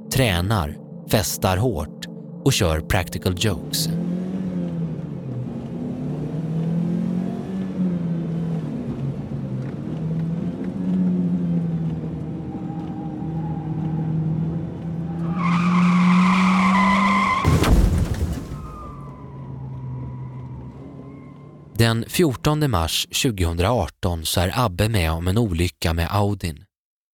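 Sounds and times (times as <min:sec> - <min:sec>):
speech: 0:00.1 - 0:04.1, 0:21.9 - 0:26.7
car engine revving hard: 0:03.4 - 0:21.8
tires screeching in a long skid: 0:03.6 - 0:21.8.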